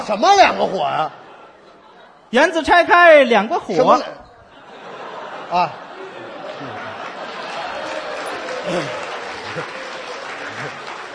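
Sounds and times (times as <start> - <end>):
speech: 0.0 - 1.2, 2.3 - 4.2, 5.5 - 5.8, 8.7 - 9.8
laughter: 0.3 - 2.3, 4.3 - 11.1
murmuring voices: 5.2 - 11.1
audience applause during a comic wordplay routine: 6.0 - 11.1.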